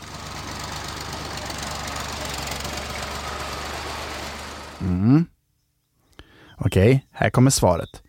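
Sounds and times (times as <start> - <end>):
tractor engine running: 0.0 - 5.0
speech: 4.8 - 5.3, 6.6 - 8.0.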